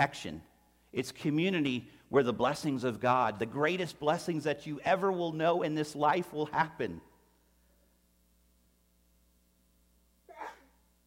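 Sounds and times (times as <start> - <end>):
speech: 0.0 - 7.1
faint room hum: 0.0 - 11.0
person sneezing: 10.3 - 10.8.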